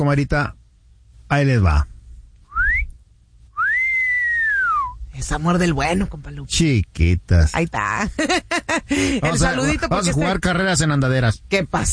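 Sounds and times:
speech: 0:00.0 - 0:00.6, 0:01.3 - 0:01.9, 0:05.2 - 0:11.9
man's wolf whistle: 0:02.5 - 0:05.0.

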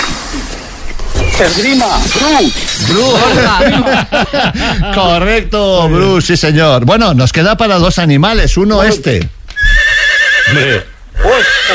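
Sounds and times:
speech: 0:01.4 - 0:09.8, 0:10.5 - 0:11.7
laughter: 0:03.0 - 0:05.4
horse neighing: 0:09.6 - 0:11.7.

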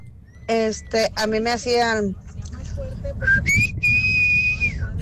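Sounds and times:
speech: 0:00.5 - 0:03.5
loud piercing human calling whistle: 0:03.3 - 0:04.9.

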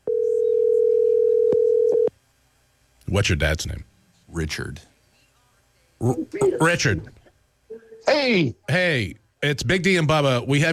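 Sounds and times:
telephone dial tone from a phone hooked up to a studio board: 0:00.0 - 0:02.1
speech: 0:03.1 - 0:04.9, 0:06.0 - 0:07.2, 0:08.0 - 0:10.7.

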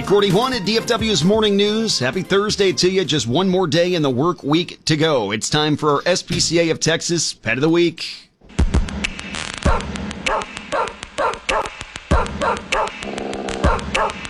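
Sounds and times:
speech: 0:00.1 - 0:08.9
dog barking: 0:09.7 - 0:11.7, 0:12.3 - 0:13.0, 0:13.6 - 0:14.2.

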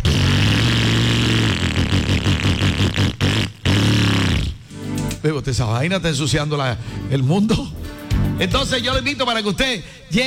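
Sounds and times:
old motorcycle engine rumbling and revving: 0:00.0 - 0:04.6
speech: 0:05.2 - 0:07.8, 0:08.4 - 0:10.2.

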